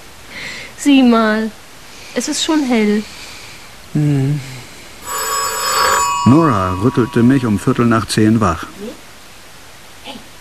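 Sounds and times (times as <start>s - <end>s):
speech: 0.8s - 1.6s, 2.2s - 3.2s, 3.9s - 4.6s, 6.2s - 9.0s
telephone bell ringing in a radio drama: 5.0s - 8.3s.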